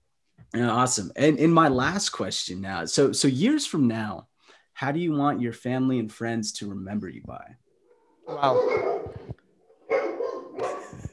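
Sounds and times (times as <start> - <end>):
speech: 0.5 - 7.6, 8.3 - 9.2
dog barking: 8.2 - 11.1.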